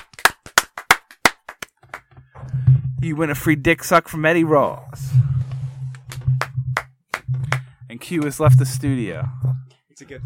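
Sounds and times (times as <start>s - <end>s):
few people clapping in a studio: 0.0s - 2.1s, 6.0s - 8.4s
speech: 3.0s - 5.2s, 8.1s - 10.2s.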